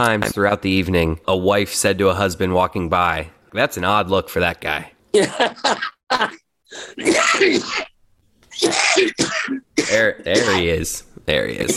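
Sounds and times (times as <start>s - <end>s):
speech: 0.0s - 7.9s, 8.6s - 11.7s
person laughing in sharp rapid bursts: 5.2s - 6.4s
harsh coughing and throat-clearing spasms: 5.2s - 10.8s.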